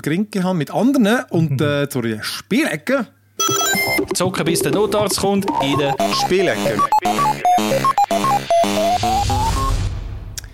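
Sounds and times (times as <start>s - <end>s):
speech: 0.0s - 9.1s
short loud musical podcast segment jingle of bright synth notes: 3.4s - 9.8s.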